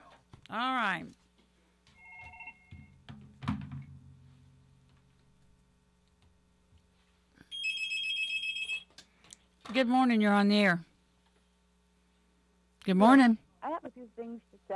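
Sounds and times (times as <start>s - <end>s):
speech: 0.5s - 1.2s, 9.8s - 10.9s, 12.9s - 14.7s
telephone ringing with electronic warble: 2.0s - 3.0s, 7.5s - 8.9s.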